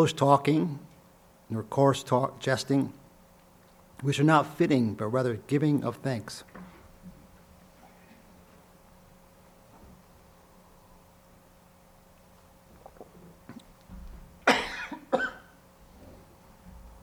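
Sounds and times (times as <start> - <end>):
speech: 0.0 - 0.9, 1.5 - 3.0, 4.0 - 6.5
person coughing: 14.4 - 15.6.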